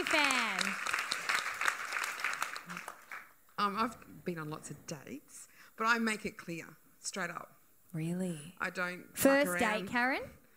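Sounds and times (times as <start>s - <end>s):
audience clapping: 0.0s - 3.6s
speech: 3.6s - 10.4s.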